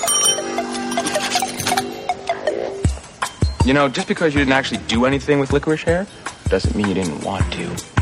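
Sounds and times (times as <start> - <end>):
bright bell ringing rapidly: 0.0 - 2.1
speech: 3.6 - 7.9.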